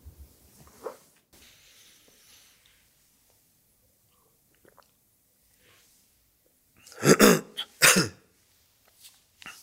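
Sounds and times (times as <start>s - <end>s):
coughing into hand: 6.9s - 8.3s.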